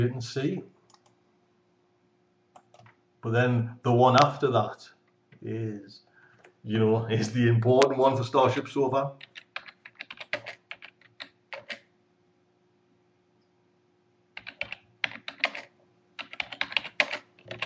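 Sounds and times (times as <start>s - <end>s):
speech: 0.0s - 0.8s, 3.2s - 6.0s, 6.6s - 9.3s
faint steady hum: 0.0s - 17.6s
typing on a computer keyboard: 2.6s - 3.0s, 9.2s - 11.9s, 14.4s - 17.6s.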